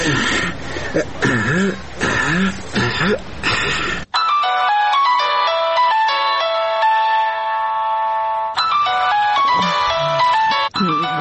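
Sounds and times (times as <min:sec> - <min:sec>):
person clearing throat and making vocal noises: 0:00.0 - 0:04.1
phone ringing with a steady electronic melody: 0:04.1 - 0:11.1.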